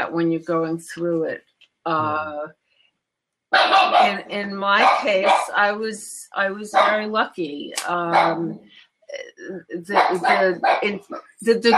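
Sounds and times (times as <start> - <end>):
speech: 0.1 - 2.6, 3.5 - 11.7
dog barking: 3.6 - 4.1, 4.8 - 5.5, 6.8 - 7.0, 10.0 - 10.8.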